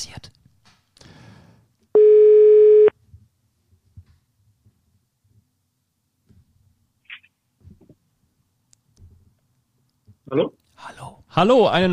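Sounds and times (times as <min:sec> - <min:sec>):
telephone ringback tone: 0:02.0 - 0:02.9
speech: 0:10.3 - 0:10.6, 0:11.3 - 0:11.9.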